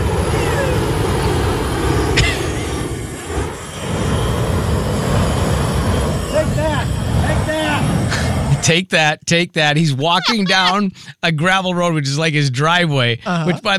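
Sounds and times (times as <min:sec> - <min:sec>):
homemade flamethrower torch fired along a gravel driveway roaring: 0:00.0 - 0:08.9
speech: 0:08.7 - 0:13.7
laughter: 0:09.7 - 0:11.4, 0:13.0 - 0:13.7.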